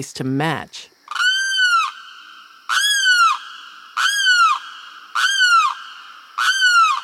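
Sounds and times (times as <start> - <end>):
speech: 0.0 - 0.9
limpkin wailing cry: 1.1 - 2.0, 2.7 - 3.4, 4.0 - 5.8, 6.4 - 7.0.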